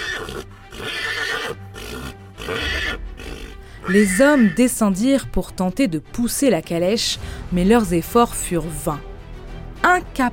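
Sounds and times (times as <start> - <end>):
horses neighing: 0.0 - 4.6
speech: 3.9 - 9.1, 9.8 - 10.3.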